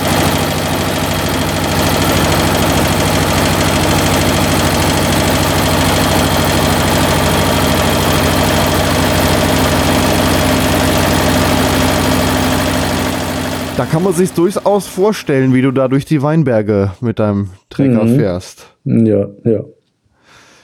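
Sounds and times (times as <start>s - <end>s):
tractor engine roaring at full throttle: 0.0s - 15.8s
speech: 13.8s - 19.8s.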